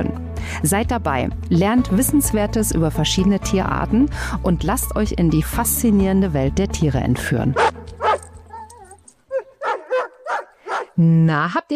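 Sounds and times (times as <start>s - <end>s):
speech: 0.0s - 7.7s, 11.0s - 11.7s
dog barking: 7.6s - 11.0s.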